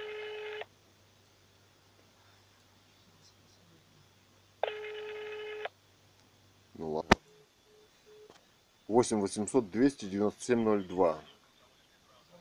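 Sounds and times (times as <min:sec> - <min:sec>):
DTMF telephone tones of a number being dialed: 0:00.0 - 0:00.7, 0:04.6 - 0:05.8, 0:07.2 - 0:08.4
speech: 0:09.0 - 0:11.3.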